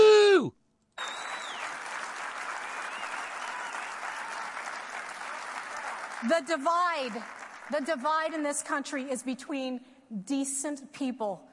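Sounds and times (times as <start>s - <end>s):
whistle: 1.0s - 1.8s, 2.7s - 3.9s
audience cheering: 1.0s - 6.4s
audience clapping: 1.0s - 8.3s
speech: 6.2s - 11.5s.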